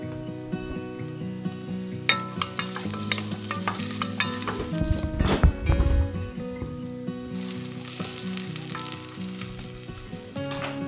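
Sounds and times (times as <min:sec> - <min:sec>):
onions and garlic sautéing in olive oil in a saucepan: 0:00.0 - 0:10.8
stirring clinks: 0:02.0 - 0:05.0, 0:07.4 - 0:10.8.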